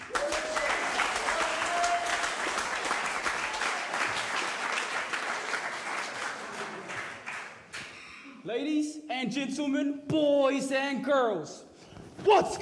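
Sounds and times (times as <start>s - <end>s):
faint cheers: 0.0s - 2.4s
applause from a large audience: 0.0s - 7.8s
speech: 8.5s - 12.6s.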